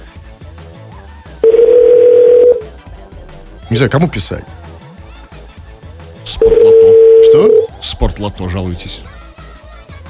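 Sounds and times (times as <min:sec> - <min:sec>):
telephone ringback tone as a call connects: 0:01.4 - 0:02.7, 0:06.3 - 0:07.7
speech: 0:03.7 - 0:04.6, 0:06.4 - 0:09.2.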